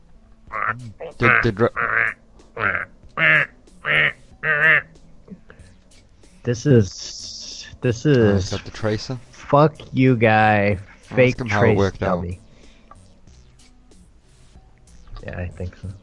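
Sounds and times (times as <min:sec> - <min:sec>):
duck quacking in a music track: 0:00.5 - 0:05.7, 0:06.9 - 0:13.0
speech: 0:00.7 - 0:03.4, 0:06.4 - 0:12.4, 0:15.3 - 0:16.0.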